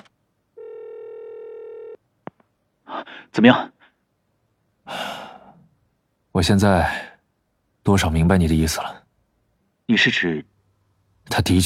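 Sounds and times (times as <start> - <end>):
telephone dial tone at a detective agency office: 0.6 - 2.0
speech: 3.0 - 3.7, 6.4 - 7.1, 7.9 - 9.0, 9.9 - 10.5, 11.3 - 11.6.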